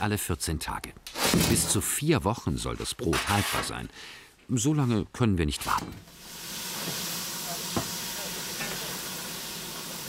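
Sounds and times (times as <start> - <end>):
speech: 0.0 - 7.0
steam locomotive hissing steam: 6.1 - 10.0.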